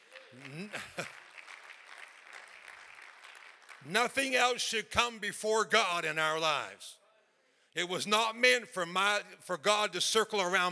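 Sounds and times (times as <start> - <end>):
audience applause: 0.0 - 4.6
speech: 0.3 - 1.1, 3.8 - 7.0, 7.8 - 10.7.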